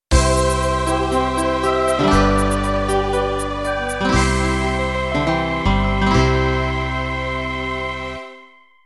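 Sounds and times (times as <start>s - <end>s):
schlager music: 0.1s - 8.6s.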